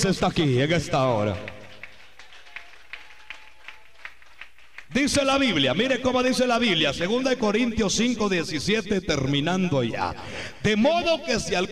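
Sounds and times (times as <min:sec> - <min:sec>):
speech: 0:00.0 - 0:01.6, 0:04.9 - 0:11.7
audience clapping in unison for God: 0:00.0 - 0:05.7.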